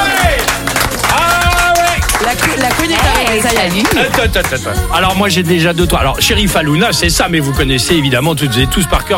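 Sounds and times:
crowd cheering: 0.0 - 4.3
crowd clapping welcoming a radio morning show guest: 0.0 - 4.8
speech: 2.8 - 9.1.

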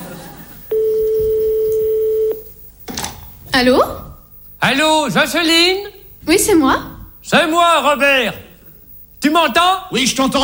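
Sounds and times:
low noise: 0.0 - 10.4
telephone line ringing tone after dialling a number: 0.7 - 2.5
speech: 3.6 - 4.0, 4.6 - 8.4, 9.2 - 10.4.

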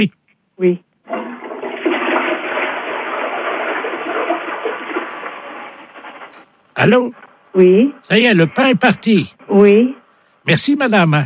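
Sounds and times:
speech: 0.0 - 0.9, 6.8 - 11.2
toilet flushing: 1.1 - 6.7.

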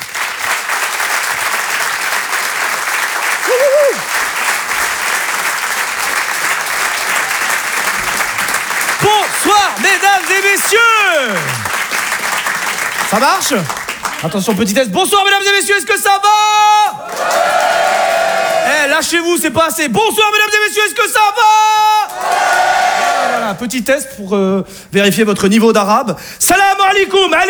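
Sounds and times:
large audience applauding loudly: 0.0 - 14.8, 16.9 - 19.1, 22.0 - 23.6
people shouting and whooping: 3.4 - 4.1, 17.0 - 18.9, 22.1 - 23.6
speech: 10.2 - 11.7, 13.1 - 17.4, 18.9 - 22.0, 23.4 - 27.4.

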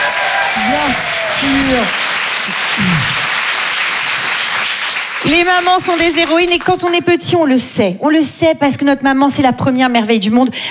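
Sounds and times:
low shout from the audience: 0.0 - 3.4
audience at a live show applauding: 0.0 - 7.0
speech: 0.8 - 3.3, 5.3 - 10.6.

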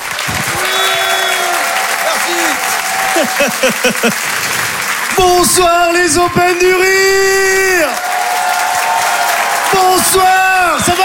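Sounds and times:
large audience in a hall applauding: 0.0 - 11.0
excited whoops and cheers: 0.2 - 4.0, 6.0 - 11.0
shrill whistles: 0.4 - 3.2
laughter: 0.5 - 5.5
speech: 3.2 - 4.6, 5.2 - 8.1, 9.7 - 11.0.

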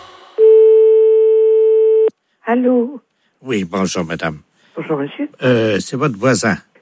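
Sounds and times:
telephone line tone after a hang-up: 0.4 - 2.1
speech: 2.5 - 6.7.

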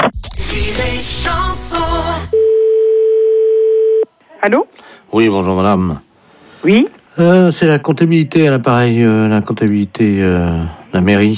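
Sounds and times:
speech: 0.7 - 2.3, 4.4 - 11.3
telephone dial tone after a call is hung up: 2.4 - 4.0.

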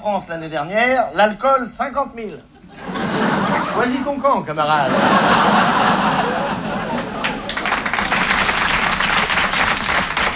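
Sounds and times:
speech: 0.0 - 2.5, 3.2 - 6.3
laughter: 2.6 - 8.7
crowd applauding: 5.3 - 10.3.

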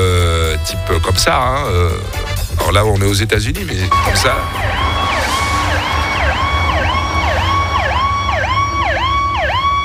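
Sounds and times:
speech: 0.7 - 4.8
ambulance siren in the United States passing with Doppler pitch shift: 3.9 - 9.8
steady low rumble of traffic or engine noise: 3.9 - 9.8.

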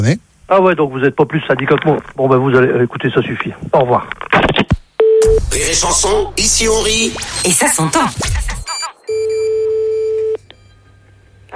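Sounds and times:
speech: 0.0 - 8.6
steady telephone line tone: 8.7 - 11.5.

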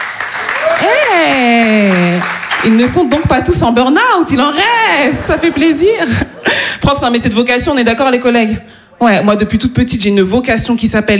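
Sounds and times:
teachers whooping at an evening show: 0.0 - 3.0
audience of teachers clapping at an evening show: 0.0 - 3.8
speech: 0.8 - 6.3, 6.9 - 11.1
laughter: 4.4 - 7.4.

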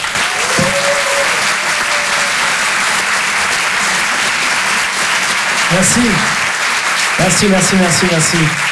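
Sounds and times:
audience shouts and whistles: 0.0 - 3.0
audience at a live show clapping: 0.0 - 8.6
speech: 5.7 - 6.4, 7.2 - 8.6.

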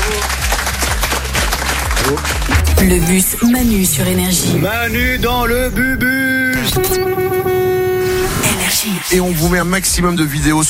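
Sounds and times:
audience applause at a radio show: 0.0 - 2.7
speech: 2.0 - 7.8, 8.7 - 10.6.

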